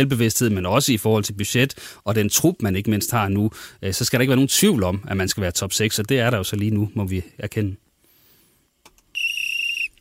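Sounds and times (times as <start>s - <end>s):
speech: 0.0s - 7.9s
referee's whistle blast: 9.2s - 10.0s.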